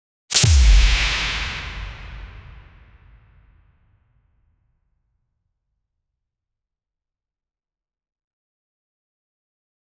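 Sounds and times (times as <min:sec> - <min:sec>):
swish punch in a fight: 0:00.3 - 0:02.6.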